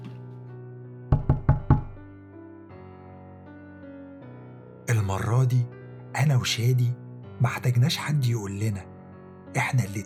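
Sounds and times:
heavy footsteps climbing wooden entrance stairs: 1.1s - 2.0s
speech: 5.1s - 8.9s, 9.5s - 10.0s.

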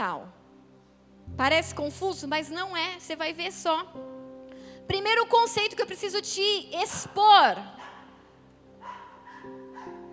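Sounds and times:
speech: 0.0s - 0.4s, 1.3s - 4.1s, 4.9s - 7.9s
several dogs barking: 7.8s - 8.2s, 8.8s - 10.1s.

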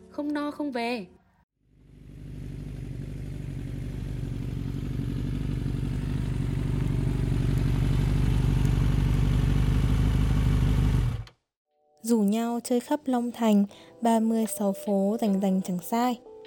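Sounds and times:
speech: 0.2s - 1.2s, 12.1s - 16.3s
motorbike engine humming as it rides along carrying riders: 1.7s - 11.4s.

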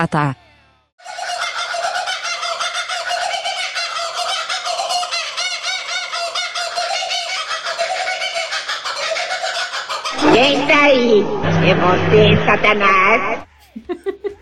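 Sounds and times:
speech: 0.0s - 0.4s, 10.3s - 14.3s
laughing kookaburra call: 1.1s - 11.4s.

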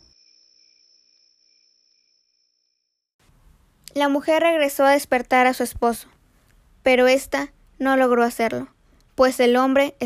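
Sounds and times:
chorus of crickets chirping at night: 0.0s - 3.0s
speech: 4.0s - 6.2s, 6.8s - 10.0s.

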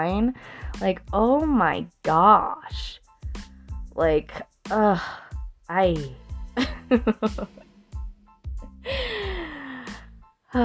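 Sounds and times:
speech: 0.0s - 3.0s, 4.0s - 7.6s
person taking a deep breath: 8.8s - 10.2s.

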